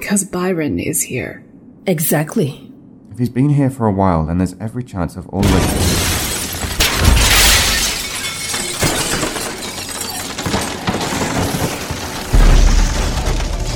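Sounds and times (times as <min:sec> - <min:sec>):
speech: 0:00.1 - 0:06.1
many cafeteria windows shattering: 0:05.4 - 0:13.7.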